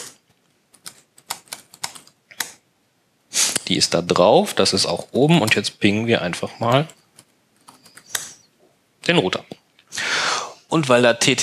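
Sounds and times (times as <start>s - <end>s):
typing an IP address on a computer keyboard: 0.7s - 2.6s, 6.6s - 8.3s
speech: 3.7s - 7.0s, 9.1s - 9.5s, 10.7s - 11.4s.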